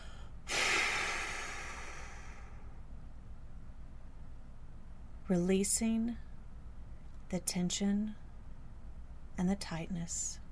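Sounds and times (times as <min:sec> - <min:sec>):
deep forceful breath out: 0:00.0 - 0:02.8
speech: 0:05.3 - 0:06.2, 0:07.3 - 0:08.2, 0:09.4 - 0:10.4.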